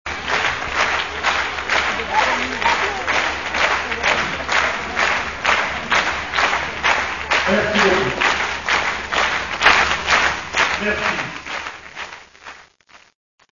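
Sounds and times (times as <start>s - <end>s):
ambiance applause: 0.1s - 13.2s.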